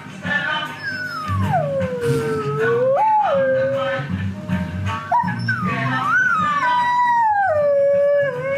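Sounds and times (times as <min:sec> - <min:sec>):
rhythmic reggae music track: 0:00.0 - 0:08.5
dogs howling along to reggae music: 0:00.8 - 0:04.0, 0:05.1 - 0:08.5.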